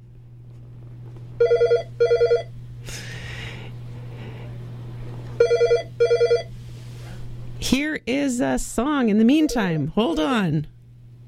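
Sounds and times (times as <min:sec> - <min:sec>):
telephone ringing at a radio station: 0:01.4 - 0:02.5, 0:05.4 - 0:06.5
sharp breathy gasp: 0:02.8 - 0:04.5
speech: 0:08.4 - 0:10.8.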